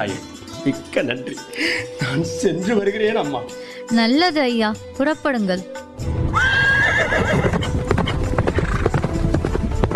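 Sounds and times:
speech: 0.0s - 6.5s
horse hooves clip-clopping on a hard surface: 7.1s - 9.9s.

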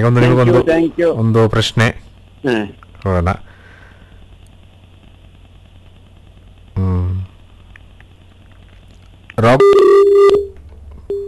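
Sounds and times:
speech: 0.0s - 3.5s, 9.4s - 10.5s
telephone line tones as a call cuts off: 9.4s - 11.2s.

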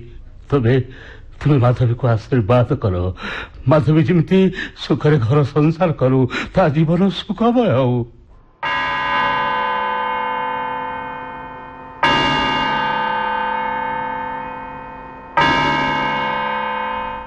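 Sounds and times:
speech: 0.0s - 8.2s
large warning bell tolling early in the morning: 8.3s - 17.2s.

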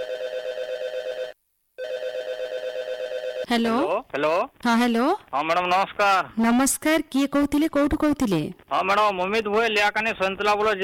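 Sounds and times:
telephone ringing as a listener phones in: 0.0s - 3.6s
speech: 3.5s - 10.8s.

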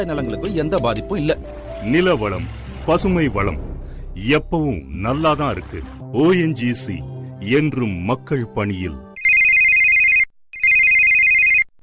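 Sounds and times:
speech: 0.0s - 9.1s
telephone ringtone warble: 9.2s - 11.7s.

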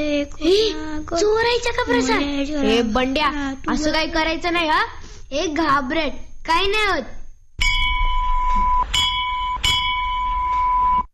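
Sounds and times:
speech: 0.0s - 7.2s
puja bell rung loudly during worship: 7.6s - 10.6s.

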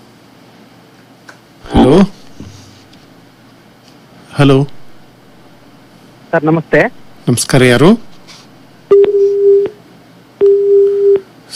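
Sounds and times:
speech: 4.4s - 4.8s, 6.3s - 8.1s
telephone busy tone after a disconnected call: 8.9s - 9.8s, 10.4s - 11.2s.

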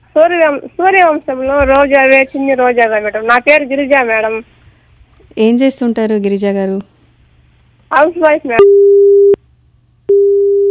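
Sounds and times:
speech: 0.2s - 4.6s, 5.3s - 7.0s, 7.9s - 9.2s
phone busy tone after a call is cut off: 8.6s - 9.4s, 10.1s - 10.6s.

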